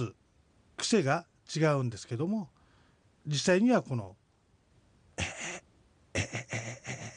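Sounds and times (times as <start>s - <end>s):
speech: 0.0s - 0.2s, 0.8s - 2.6s, 3.2s - 4.2s
person choking cough: 5.2s - 7.1s
person clearing throat: 5.2s - 7.1s.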